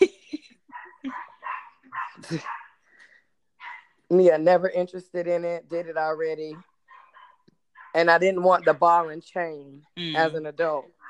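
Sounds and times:
puppy barking and yipping: 0:00.7 - 0:02.8, 0:03.6 - 0:04.0, 0:06.5 - 0:08.0
speech: 0:02.3 - 0:02.6, 0:04.1 - 0:06.7, 0:07.9 - 0:11.0.

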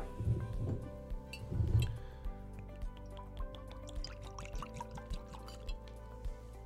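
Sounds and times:
lighter trickle and small drips of bourbon: 0:01.3 - 0:06.2
Kentucky straight bourbon whiskey glugging into a glass: 0:02.8 - 0:05.8.

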